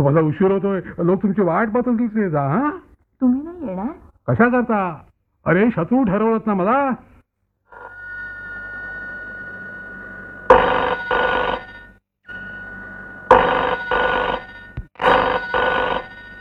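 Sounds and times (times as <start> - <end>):
speech: 0.0 - 7.1
telephone bell ringing in double bursts: 7.7 - 16.3
low steady hum: 7.8 - 16.3.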